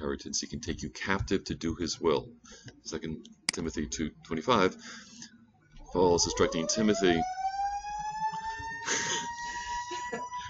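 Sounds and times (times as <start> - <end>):
speech: 0.0 - 5.3, 5.9 - 7.4
faint emergency vehicle siren passing outside: 5.0 - 10.4.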